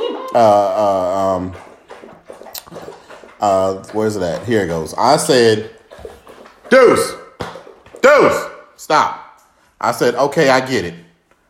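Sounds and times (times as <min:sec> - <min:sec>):
dog lapping up water: 0:00.0 - 0:08.8
speech: 0:00.4 - 0:01.7, 0:03.4 - 0:05.8, 0:06.7 - 0:07.2, 0:08.0 - 0:09.2, 0:09.8 - 0:11.0.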